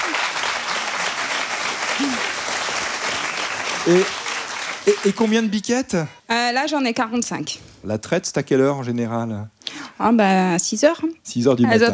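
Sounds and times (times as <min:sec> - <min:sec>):
audience applause: 0:00.0 - 0:05.6
speech: 0:03.8 - 0:04.2, 0:04.8 - 0:11.9.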